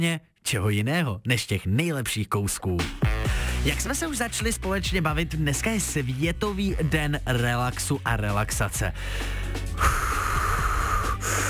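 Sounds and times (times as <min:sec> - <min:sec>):
speech: 0:00.0 - 0:10.0
deep breath in and out during a relaxation exercise: 0:03.3 - 0:03.6, 0:09.0 - 0:11.4.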